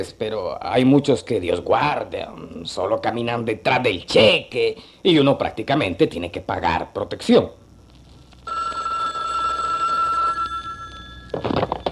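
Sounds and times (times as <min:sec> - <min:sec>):
speech: 0:00.0 - 0:07.6
telephone bell ringing: 0:08.5 - 0:11.8.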